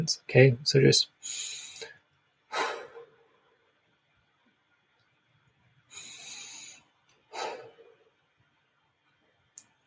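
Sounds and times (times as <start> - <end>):
speech: 0.0 - 1.6
slow deep breaths: 1.2 - 3.7, 5.8 - 8.2.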